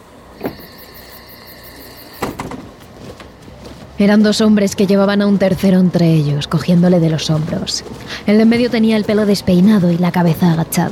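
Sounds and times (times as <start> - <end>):
bus door opened by the driver at a roadside stop: 0.4 - 1.1, 2.0 - 2.9
speech: 4.0 - 10.9.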